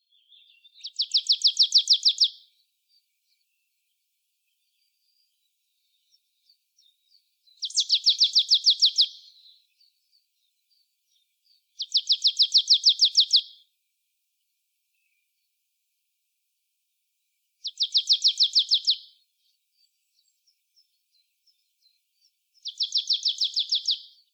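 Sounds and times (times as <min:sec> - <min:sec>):
marsh tit Poecile palustris calling: 0:00.8 - 0:02.3, 0:07.6 - 0:09.3, 0:11.8 - 0:13.5, 0:17.6 - 0:19.0, 0:22.6 - 0:24.1.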